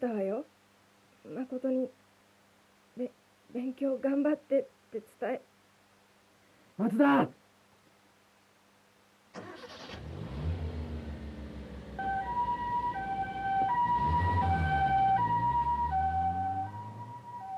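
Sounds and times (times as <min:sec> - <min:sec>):
speech: 0:01.4 - 0:02.0, 0:03.0 - 0:05.5, 0:06.8 - 0:07.4
loud vehicle engine rumble: 0:10.1 - 0:17.4
ambulance siren alternating between two tones: 0:11.9 - 0:17.5.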